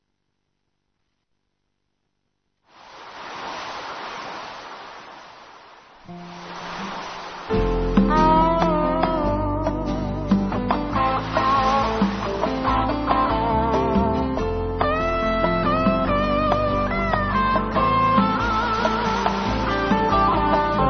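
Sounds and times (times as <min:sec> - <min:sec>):
ocean-like whooshing noise: 0:02.7 - 0:08.0, 0:11.0 - 0:13.2, 0:18.7 - 0:20.4
short song with sustained melodic notes over a steady low bass: 0:07.5 - 0:20.8.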